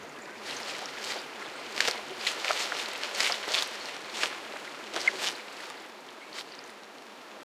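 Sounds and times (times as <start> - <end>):
soft water swish in an autumn forest: 0.0 - 7.4.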